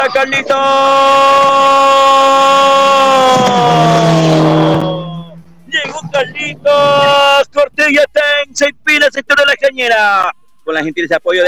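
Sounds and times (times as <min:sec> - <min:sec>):
speech: 0:00.0 - 0:04.9, 0:07.9 - 0:11.4
racing car engine at full throttle on a road race curve: 0:00.0 - 0:09.2.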